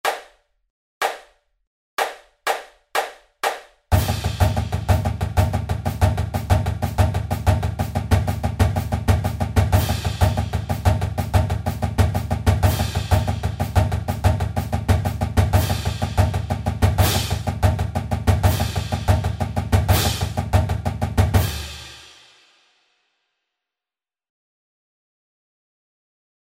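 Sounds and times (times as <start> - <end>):
triplet grid rhythm pattern at 124 bpm: 2.0 - 21.5.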